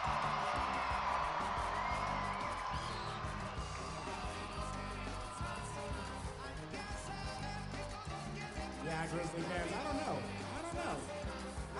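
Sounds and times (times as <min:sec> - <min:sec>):
crowd cheering and screaming: 0:00.0 - 0:08.3
speech: 0:09.1 - 0:11.2.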